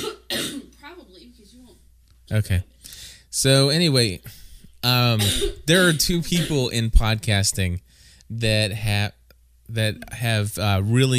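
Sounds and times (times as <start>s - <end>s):
person clearing throat: 0.0s - 0.7s, 5.2s - 6.6s
person coughing: 0.0s - 0.8s, 5.2s - 6.7s
speech: 1.3s - 2.7s, 3.3s - 11.1s.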